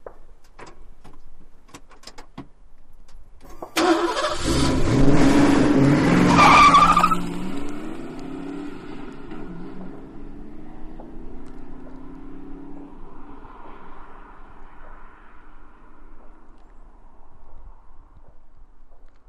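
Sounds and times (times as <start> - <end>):
Mustang peeling out on a street: 3.5 - 16.4.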